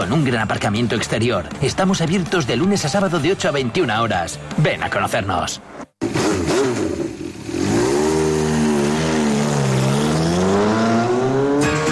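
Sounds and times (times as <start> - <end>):
speech: 0.0 - 5.8
motorcycle engine revving: 6.0 - 11.9.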